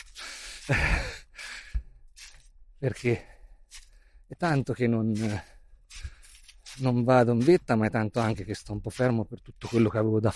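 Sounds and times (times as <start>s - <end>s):
heavy labored breathing of a hiker climbing uphill: 0.0s - 2.0s, 5.5s - 6.4s
dull thuds of slowing footsteps: 0.0s - 10.3s
speech: 0.7s - 1.1s, 2.8s - 3.3s, 4.3s - 6.0s, 6.8s - 10.3s.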